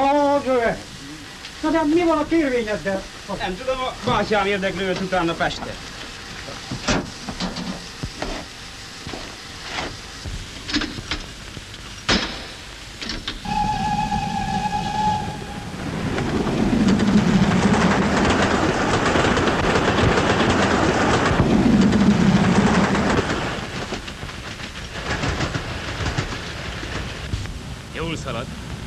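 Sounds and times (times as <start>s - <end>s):
train running on rails: 0.0s - 28.8s
speech: 1.6s - 5.9s
brief high tonal squeal: 13.4s - 16.9s.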